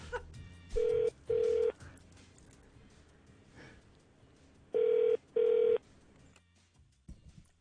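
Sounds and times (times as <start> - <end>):
telephone call ringing tones: 0.8 - 1.7, 4.8 - 5.8.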